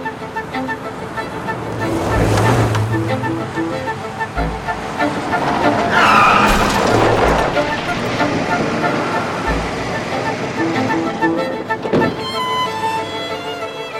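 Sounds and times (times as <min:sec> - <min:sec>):
loud car road noise: 0:00.0 - 0:13.9
car braking hard with tires skidding and squealing: 0:00.3 - 0:13.4
car crash impact: 0:05.9 - 0:10.0.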